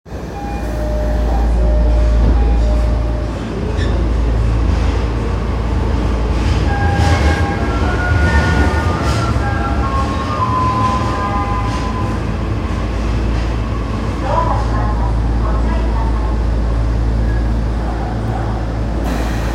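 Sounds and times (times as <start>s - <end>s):
train sounds at Shin-Koenji station on the Marunouchi Line: 0.1s - 19.5s.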